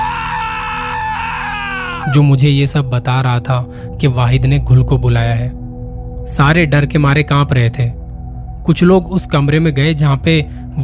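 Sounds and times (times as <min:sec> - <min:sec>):
boy screaming in a high-pitched cry: 0:00.0 - 0:02.2
speech: 0:02.0 - 0:05.6, 0:06.3 - 0:08.0, 0:08.6 - 0:10.8.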